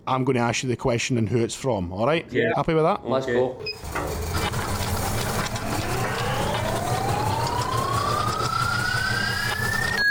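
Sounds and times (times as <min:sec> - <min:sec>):
speech: 0:00.1 - 0:04.4
random number generator spinning sound effect in a question game: 0:04.8 - 0:10.1.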